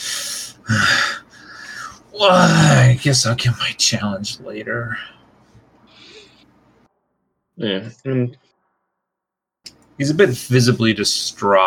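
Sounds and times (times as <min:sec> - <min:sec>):
heavy rasping breaths: 0:00.0 - 0:02.7, 0:05.8 - 0:06.6
speech: 0:02.2 - 0:05.2, 0:07.6 - 0:08.4, 0:10.0 - 0:11.6.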